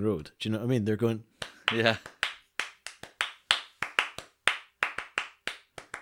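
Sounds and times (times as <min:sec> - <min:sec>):
speech: 0:00.0 - 0:02.2
sharp hand claps in polyrhythms: 0:01.3 - 0:05.9.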